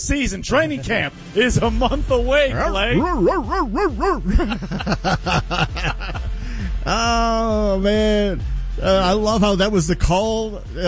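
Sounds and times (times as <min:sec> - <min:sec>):
speech: 0:00.0 - 0:10.8
laughter: 0:01.6 - 0:07.1
excited, yappy dog barking and yelping: 0:03.0 - 0:04.3.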